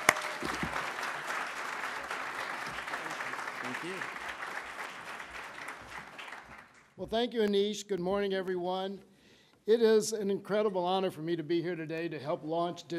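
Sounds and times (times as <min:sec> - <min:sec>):
sizable audience applauding: 0:00.0 - 0:06.9
speech: 0:03.8 - 0:04.2, 0:07.0 - 0:12.9.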